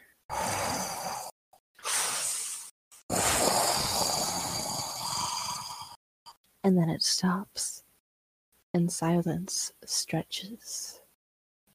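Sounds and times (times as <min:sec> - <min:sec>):
heavy rasping breathing: 0:00.0 - 0:06.0
speech: 0:06.7 - 0:07.8, 0:08.7 - 0:11.0.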